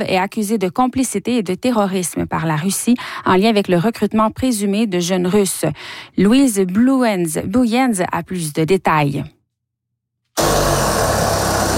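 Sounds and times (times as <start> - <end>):
speech: 0.0 - 9.4
saw cutting into a huge white tank: 10.4 - 11.7.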